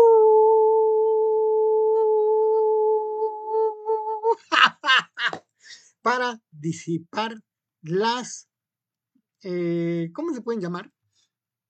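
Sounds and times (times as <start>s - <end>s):
human voice howling: 0.0s - 4.5s
speech: 6.0s - 8.5s, 9.4s - 11.0s.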